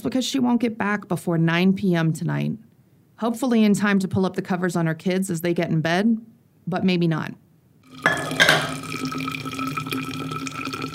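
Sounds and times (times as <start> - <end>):
speech: 0.0 - 8.7
hot coffee pouring from a thermos into a cup: 7.9 - 10.9.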